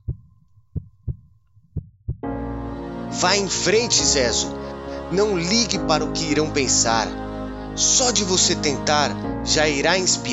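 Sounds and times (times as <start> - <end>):
heartbeat thumping in low double beats: 0.0 - 2.4
speech: 3.1 - 7.2, 7.8 - 10.3.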